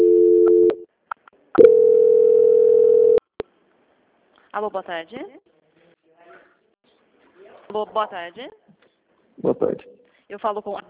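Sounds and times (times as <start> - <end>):
telephone line tone during a call transfer: 0.0 - 0.8, 1.6 - 3.2
speech: 4.6 - 5.5, 7.7 - 8.7, 9.4 - 10.8.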